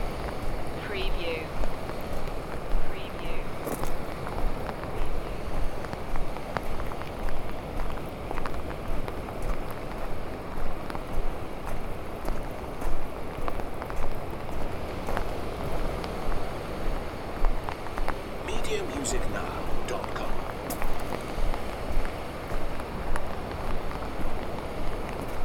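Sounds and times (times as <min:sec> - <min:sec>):
rain on a hood while walking near the sea: 0:00.0 - 0:25.4.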